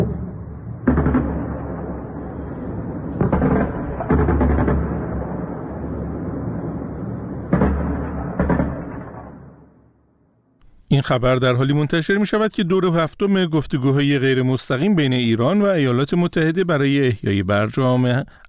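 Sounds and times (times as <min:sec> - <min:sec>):
anti-aircraft gunfire: 0:00.0 - 0:09.9
speech: 0:11.0 - 0:18.4.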